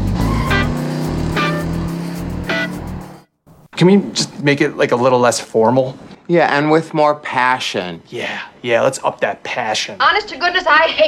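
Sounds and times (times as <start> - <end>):
car engine driving off: 0.0 - 3.2
speech: 3.8 - 11.0.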